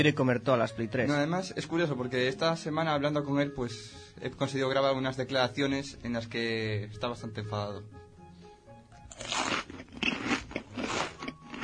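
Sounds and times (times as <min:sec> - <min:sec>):
speech: 0:00.0 - 0:08.0, 0:09.2 - 0:09.4
loud chewing and crunching: 0:09.1 - 0:11.6.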